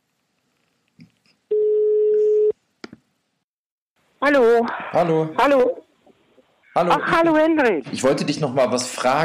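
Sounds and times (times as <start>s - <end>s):
telephone ringback tone while a call is placed: 1.5s - 2.5s
speech: 4.3s - 5.8s, 6.8s - 9.2s.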